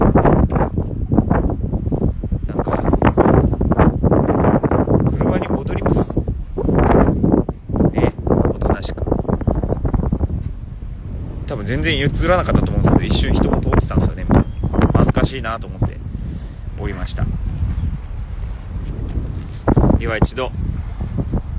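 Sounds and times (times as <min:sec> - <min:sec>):
loud wind buffeting the microphone outdoors: 0:00.0 - 0:21.5
speech: 0:11.7 - 0:14.0, 0:15.4 - 0:15.9, 0:16.8 - 0:17.4, 0:20.1 - 0:20.6.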